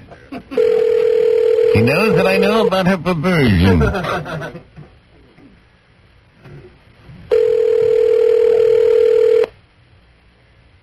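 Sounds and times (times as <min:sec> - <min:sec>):
faint noise: 0:00.0 - 0:10.8
electronic telephone ringback tone: 0:00.6 - 0:02.5, 0:07.3 - 0:09.5
speech: 0:01.8 - 0:04.7
laughter: 0:03.6 - 0:04.9.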